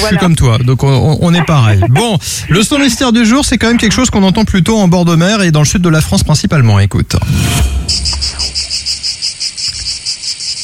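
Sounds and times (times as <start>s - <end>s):
speech: 0.0s - 8.7s
cicadas chirping: 8.6s - 10.6s.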